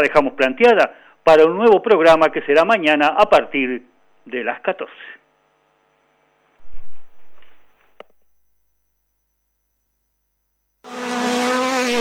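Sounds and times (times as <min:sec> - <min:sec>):
speech: 0:00.0 - 0:05.2
rally car engine revving and roaring: 0:10.9 - 0:11.9.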